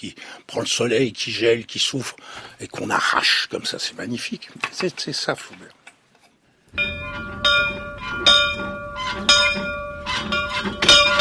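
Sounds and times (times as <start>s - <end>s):
speech: 0.0s - 5.8s, 6.7s - 7.5s
old house bell ringing: 6.8s - 11.1s.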